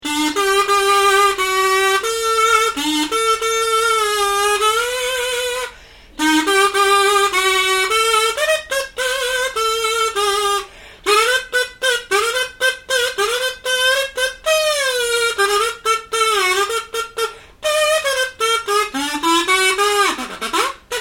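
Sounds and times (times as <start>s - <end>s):
mirliton buzzing: 0.0s - 20.9s.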